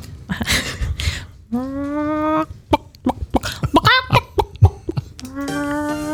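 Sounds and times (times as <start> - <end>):
woman imitating clucking hen: 1.5 - 6.1.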